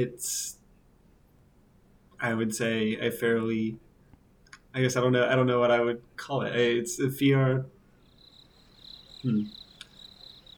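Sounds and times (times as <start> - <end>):
speech: 0.0 - 0.6, 2.2 - 3.8, 4.7 - 7.8, 9.2 - 9.6
crickets trilling: 8.0 - 10.5.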